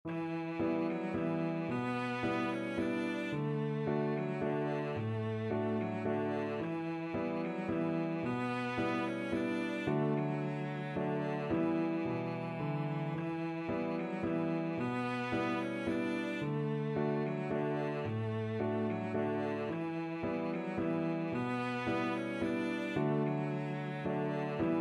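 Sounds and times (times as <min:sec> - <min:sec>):
cello playing a folk tune: 0:00.0 - 0:24.7.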